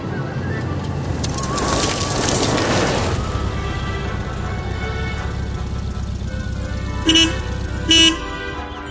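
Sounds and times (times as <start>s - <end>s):
car engine rumble: 0.0s - 8.8s
car horn toots: 3.2s - 8.7s.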